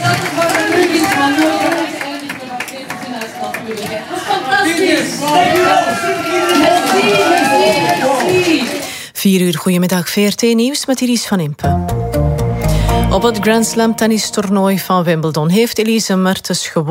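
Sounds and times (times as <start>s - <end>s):
loud cheering: 0.0s - 8.9s
large crowd applauding: 0.0s - 9.0s
overlapping voices: 0.0s - 9.0s
speech: 9.2s - 12.0s, 13.1s - 16.8s.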